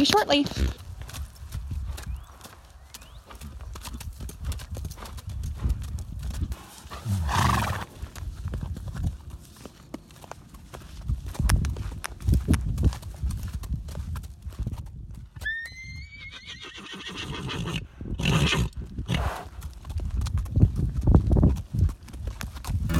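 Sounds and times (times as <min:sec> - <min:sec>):
speech: 0:00.0 - 0:00.8
stallion hooves clip-clopping: 0:00.8 - 0:15.8, 0:19.5 - 0:22.8
stallion whinnying: 0:15.4 - 0:18.7.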